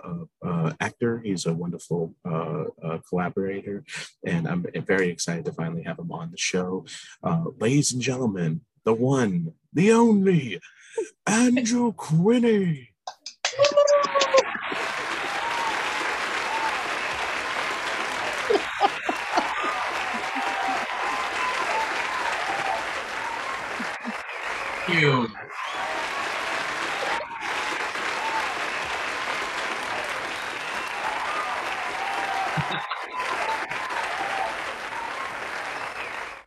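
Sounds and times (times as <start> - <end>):
laughter: 0.0 - 7.8, 10.3 - 12.7, 13.5 - 28.4, 32.3 - 33.9
speech: 0.7 - 12.9, 24.9 - 25.4
audience members whooping and shouting: 13.5 - 36.4
live audience applauding: 13.5 - 36.4.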